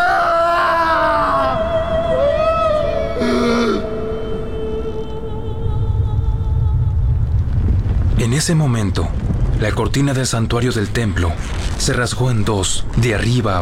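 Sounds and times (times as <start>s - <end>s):
eerie wavering moans and sliding wail-like tones: 0.0s - 7.5s
deep earthquake rumble: 0.0s - 13.6s
speech: 8.4s - 13.6s.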